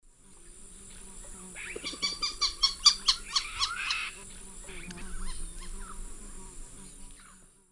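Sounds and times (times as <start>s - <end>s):
Jacana jacana flight calls in South American Eastern Lowlands: 1.5s - 6.0s.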